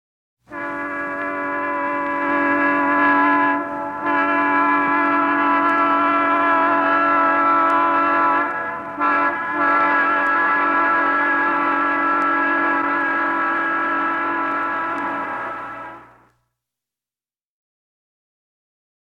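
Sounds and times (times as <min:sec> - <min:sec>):
diesel locomotive whistle signal at a railway station: 0:00.5 - 0:16.3.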